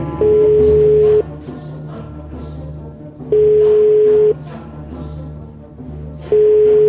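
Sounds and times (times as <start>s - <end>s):
telephone tone while calling someone: 0.2s - 1.2s, 3.3s - 4.4s, 6.3s - 6.8s.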